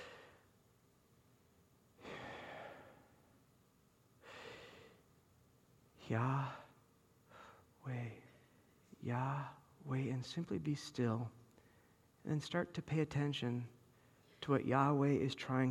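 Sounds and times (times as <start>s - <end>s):
slow controlled breathing with long airy exhales and inhales: 0.0s - 0.6s, 2.0s - 3.3s, 4.2s - 5.1s, 6.4s - 8.7s, 11.5s - 12.1s
speech: 6.1s - 6.6s, 7.8s - 8.2s, 9.0s - 11.4s, 12.2s - 13.8s, 14.4s - 15.6s.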